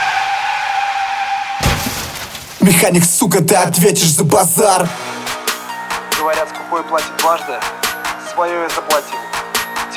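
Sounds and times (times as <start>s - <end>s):
car tires skidding under hard braking: 0.0s - 2.3s
speech: 2.6s - 5.2s, 6.3s - 7.8s, 8.4s - 9.2s.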